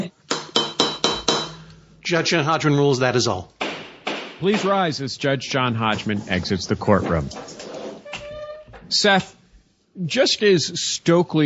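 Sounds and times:
wooden gavel striking: 0.3s - 1.7s, 3.6s - 4.8s
speech: 2.1s - 3.6s, 4.4s - 7.6s, 8.9s - 9.4s, 10.0s - 11.4s.

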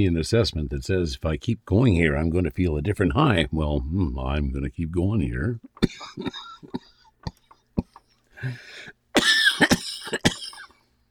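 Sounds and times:
speech: 0.0s - 6.8s, 8.4s - 9.0s
person coughing after a vaporizer inhale: 5.8s - 8.1s, 9.2s - 10.8s.

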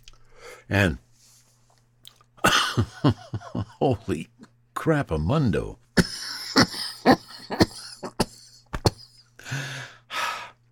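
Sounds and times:
speech: 0.7s - 1.0s, 2.8s - 6.1s
person coughing after taking a hit: 2.4s - 2.9s, 6.0s - 9.2s.

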